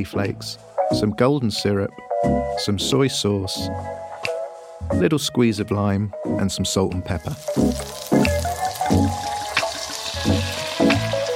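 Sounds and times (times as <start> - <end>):
speech: 0.0 - 4.0, 4.8 - 8.3
water running into a cooking pan for boiling noodles: 7.3 - 11.3.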